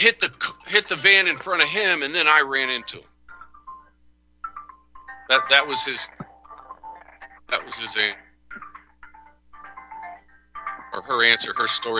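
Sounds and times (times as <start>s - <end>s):
speech: 0.0s - 3.1s, 5.3s - 6.3s, 7.5s - 8.6s, 10.9s - 11.9s
phone ringing with a repeating electronic melody: 2.7s - 11.9s.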